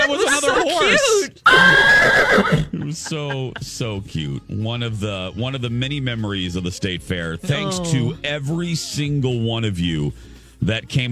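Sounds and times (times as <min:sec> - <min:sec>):
laughter: 0:00.0 - 0:04.0
speech: 0:00.2 - 0:11.1
horse neighing in a loud wavering whinny: 0:01.4 - 0:02.8.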